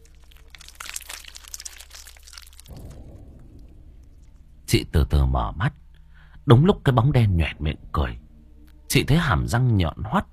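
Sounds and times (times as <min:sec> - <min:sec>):
neck bones cracking and snapping: 0:00.0 - 0:04.6
low steady rumbling: 0:00.0 - 0:09.7
speech: 0:04.7 - 0:05.8, 0:06.4 - 0:08.2, 0:08.9 - 0:10.3.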